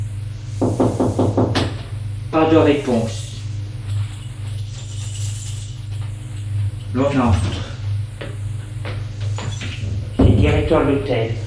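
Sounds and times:
low steady hum: 0.0 - 11.4
firm knocking on a hotel bedroom door: 0.6 - 1.9, 10.2 - 10.7
speech: 2.4 - 3.2, 7.0 - 7.7, 10.4 - 11.4.

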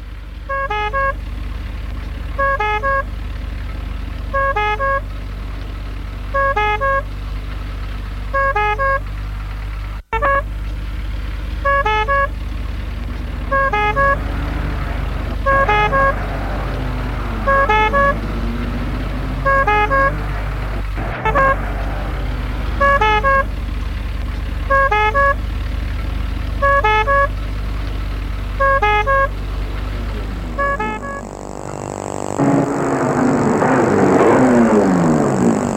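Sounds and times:
ambulance low engine rumble: 0.0 - 35.7
ambulance two-tone horn carrying a patient to a clinic: 0.5 - 1.2, 2.4 - 3.1, 4.3 - 5.1, 6.3 - 7.1, 8.3 - 9.1, 10.1 - 10.6, 11.6 - 12.4, 13.0 - 23.6, 24.7 - 25.4, 26.6 - 27.4, 28.5 - 35.7.

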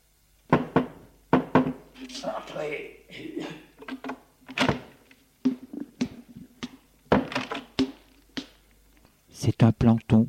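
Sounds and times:
knocking on a door: 0.5 - 1.9
speech: 2.0 - 4.2, 9.6 - 10.2.

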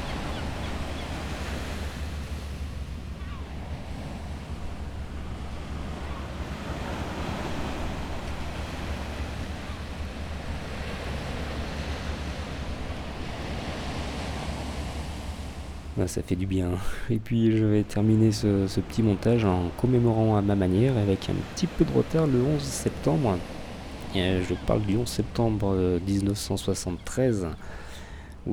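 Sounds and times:
ocean waves washing over a beach on the edge of a city: 0.0 - 28.5
speech: 16.0 - 27.8.

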